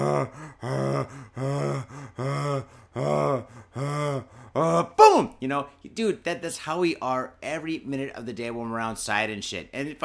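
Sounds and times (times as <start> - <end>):
person imitating the panicked gasping breath of a small creature trapped in a microwave: 0.0 - 5.3
speech: 0.2 - 1.3, 5.4 - 10.0.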